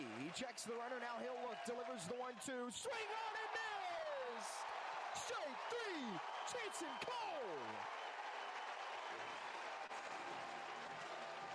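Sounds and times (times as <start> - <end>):
large ballpark crowd roaring and applauding: 0.0 - 11.5
speech: 0.3 - 3.7, 4.3 - 8.0.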